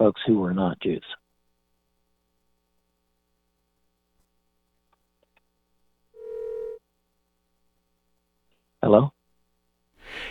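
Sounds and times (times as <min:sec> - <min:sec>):
speech: 0:00.0 - 0:01.2, 0:08.8 - 0:09.2
faint noise: 0:00.0 - 0:10.2
telephone line tone: 0:06.2 - 0:06.8.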